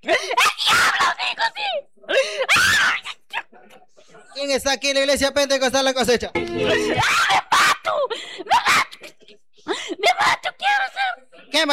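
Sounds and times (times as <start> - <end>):
person screaming and wailing: 0.1 - 1.8, 2.5 - 3.2, 6.6 - 9.0, 10.0 - 11.2
speech: 4.5 - 7.4.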